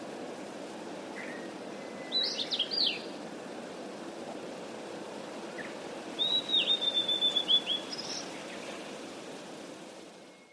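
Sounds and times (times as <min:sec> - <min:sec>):
constant low hiss: 0:00.0 - 0:10.5
blue-and-white flycatcher song: 0:01.0 - 0:03.2, 0:04.8 - 0:10.5.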